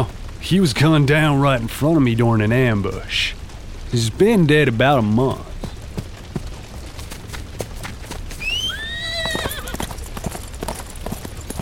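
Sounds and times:
speech: 0:00.0 - 0:05.5
horse hooves clip-clopping on hard ground: 0:02.8 - 0:11.6
horse whinnying: 0:08.4 - 0:09.9.

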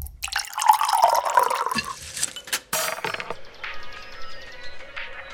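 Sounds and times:
large creek water flowing in the Valle de Uco: 0:00.1 - 0:02.0.

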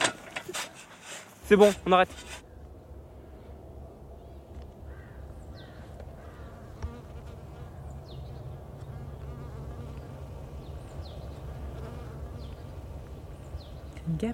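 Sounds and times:
speech: 0:01.5 - 0:02.4
faint bird calls: 0:02.4 - 0:14.1
honeybees buzzing with low droning hum: 0:06.2 - 0:14.3.

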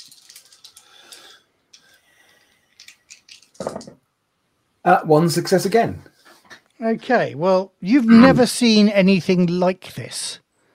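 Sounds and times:
dice rolled for a technology test rattling and clattering: 0:00.0 - 0:01.3, 0:02.8 - 0:03.9
speech: 0:04.8 - 0:06.2, 0:06.8 - 0:10.4.

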